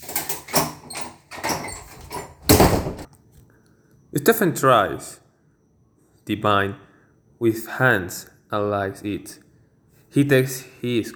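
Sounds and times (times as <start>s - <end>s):
door being pulled shut: 0.0s - 3.1s
speech: 4.2s - 5.2s, 6.3s - 9.4s, 10.1s - 11.1s.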